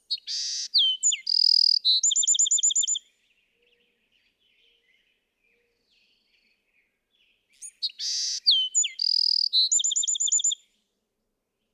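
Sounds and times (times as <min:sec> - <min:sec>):
Bewick's wren singing: 0:00.1 - 0:03.0, 0:07.6 - 0:10.6.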